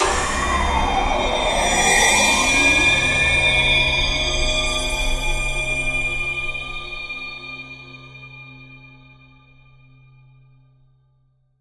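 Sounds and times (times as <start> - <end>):
tense alarming horror film sound: 0.0 - 7.3.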